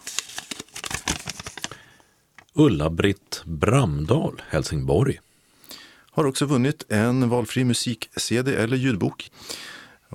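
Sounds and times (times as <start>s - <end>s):
paper lottery entries being mixed and drawn from a jar: 0.0s - 1.7s
speech: 2.6s - 5.2s, 6.2s - 10.1s.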